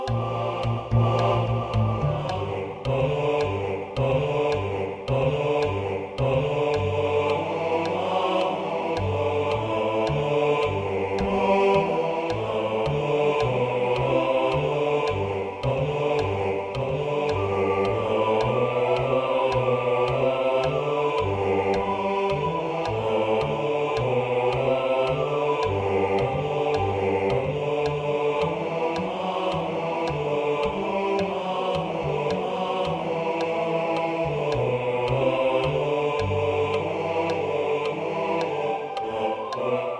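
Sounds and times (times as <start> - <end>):
bass: 0.1 - 39.8.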